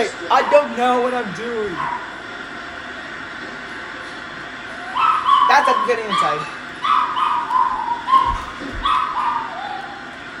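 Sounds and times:
speech: 0:00.0 - 0:02.2, 0:05.5 - 0:06.6
dog yipping and barking: 0:01.8 - 0:02.1, 0:04.8 - 0:10.1
dog howling in long wavering high-pitched cries: 0:04.8 - 0:10.3.

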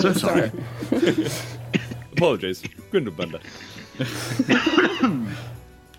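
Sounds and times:
speech: 0:00.0 - 0:01.6, 0:02.2 - 0:05.6
laughter: 0:00.0 - 0:02.2, 0:03.0 - 0:05.5
harsh coughing fit from something caught in the throat: 0:01.0 - 0:05.4.

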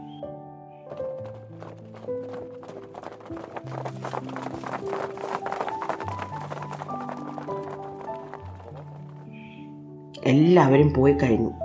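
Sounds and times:
hoofbeats of horses galloping away: 0:00.9 - 0:09.6
speech: 0:04.0 - 0:05.5, 0:10.3 - 0:11.6.

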